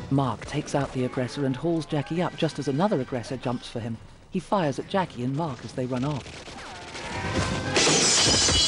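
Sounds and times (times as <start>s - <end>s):
speech: 0.2s - 6.5s
glass window shattering as a person jumps through it: 7.7s - 8.6s.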